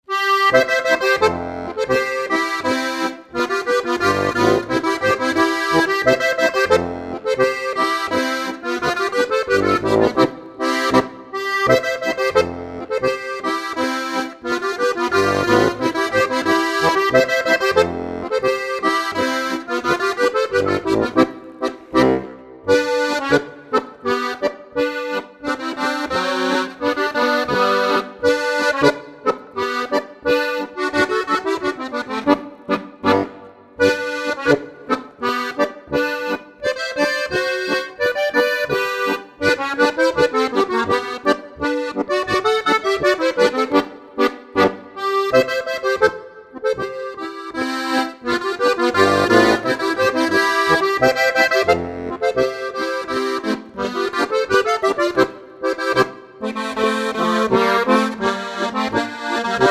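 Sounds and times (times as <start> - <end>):
Bavarian Boarischer folk dance music: 0.0 - 59.6.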